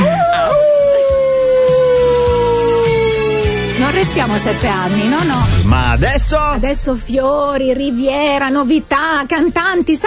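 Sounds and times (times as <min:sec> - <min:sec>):
person imitating a wolf howl: 0:00.0 - 0:03.5
faint music: 0:00.0 - 0:10.0
speech: 0:04.2 - 0:10.0.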